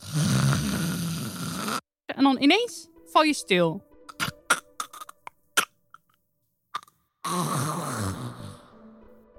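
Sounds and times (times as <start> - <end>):
long loud rasping snores: 0.0 - 1.9, 6.8 - 8.8
speech: 2.2 - 3.9.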